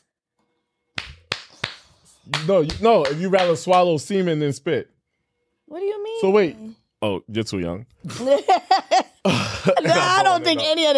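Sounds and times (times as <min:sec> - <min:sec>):
hand clapping: 0:01.0 - 0:04.0
speech: 0:02.2 - 0:04.9, 0:05.7 - 0:10.9
laughter: 0:08.0 - 0:10.8.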